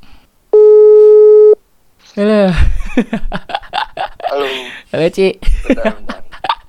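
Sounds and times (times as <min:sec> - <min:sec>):
WhatsApp phone call electronic ringing tone: 0:00.6 - 0:01.6
speech: 0:02.2 - 0:03.5, 0:04.3 - 0:06.0
laughter: 0:02.5 - 0:04.8, 0:05.4 - 0:06.6.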